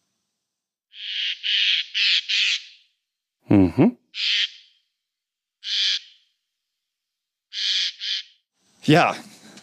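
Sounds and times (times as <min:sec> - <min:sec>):
harsh raspy bird alarm calls: 0:00.9 - 0:02.8, 0:04.2 - 0:04.8, 0:05.6 - 0:06.3, 0:07.5 - 0:08.4
person murmuring: 0:03.4 - 0:04.0
speech: 0:03.5 - 0:04.0, 0:08.9 - 0:09.3.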